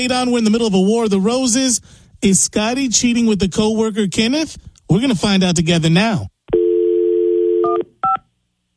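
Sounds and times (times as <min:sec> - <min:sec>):
speech: 0:00.0 - 0:06.3
phone dial tone: 0:06.5 - 0:08.2.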